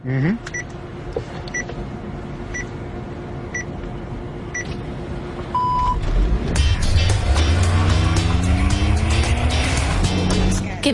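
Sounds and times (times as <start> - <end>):
self-driving car motor and road noise with rising whine: 0.0 - 10.9
steady hum of a self-driving car: 0.0 - 10.9
self-driving car evenly spaced beeps: 5.6 - 6.0.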